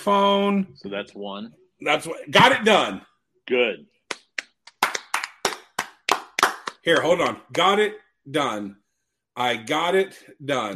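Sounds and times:
speech: 0.0s - 3.9s, 6.8s - 8.8s, 9.4s - 10.7s
sharp handclaps in applause: 4.1s - 7.8s.

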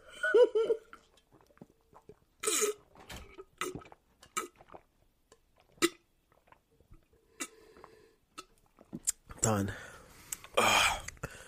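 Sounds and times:
people gulping and swallowing beer: 0.8s - 9.4s
speech: 9.5s - 9.9s.

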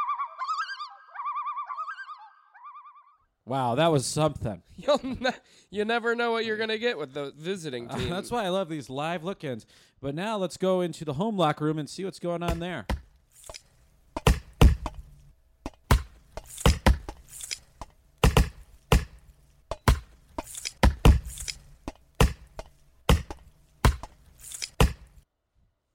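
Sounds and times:
speech: 3.4s - 13.0s
wood being chopped: 12.5s - 13.6s, 14.2s - 25.2s.

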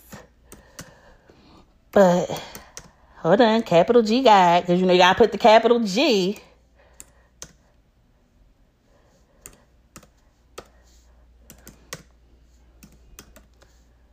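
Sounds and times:
faint steady hum: 0.0s - 14.1s
typing on a laptop keyboard with one hand: 0.5s - 1.0s, 2.3s - 2.9s, 6.9s - 7.6s, 9.4s - 10.8s, 11.4s - 12.2s, 12.8s - 13.8s
speech: 2.0s - 2.5s, 3.2s - 6.5s.

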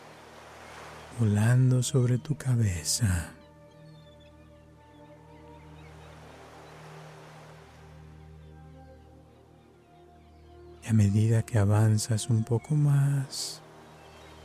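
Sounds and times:
ocean waves breaking on the shore: 0.0s - 3.5s, 5.0s - 9.0s, 11.7s - 14.4s
speech: 1.2s - 3.4s, 10.9s - 13.6s.

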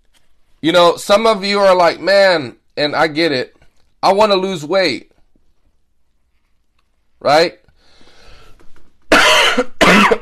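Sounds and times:
speech: 0.6s - 5.1s, 7.2s - 7.6s, 9.6s - 10.2s
loud harsh coughs: 9.1s - 10.2s.

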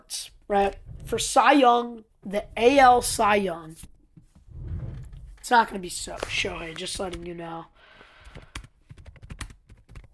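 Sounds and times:
speech: 0.1s - 3.9s, 5.4s - 7.8s
typing on a computer keyboard: 8.2s - 10.1s.

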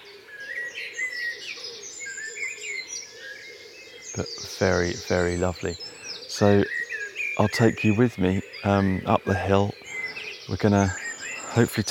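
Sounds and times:
blackbirds singing in a dawn chorus: 0.0s - 11.8s
pheasant calling in a dawn chorus: 0.0s - 11.8s
speech: 4.2s - 6.8s, 7.4s - 9.8s, 10.5s - 11.0s, 11.6s - 11.8s.

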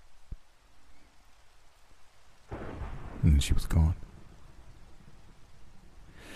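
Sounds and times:
rain during a storm: 0.0s - 6.3s
thunder low continuous rumble: 2.5s - 6.3s
speech: 3.2s - 4.1s.

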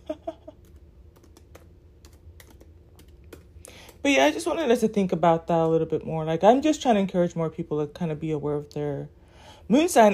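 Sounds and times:
typing a search query on a computer keyboard: 0.6s - 4.0s
speech: 4.0s - 10.1s.

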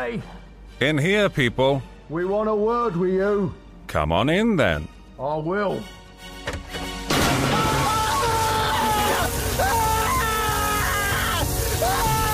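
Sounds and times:
speech: 0.0s - 6.0s
bucket of holy water crashing and splashing down from a door: 7.1s - 9.7s
person groaning and crying out: 7.3s - 12.3s.

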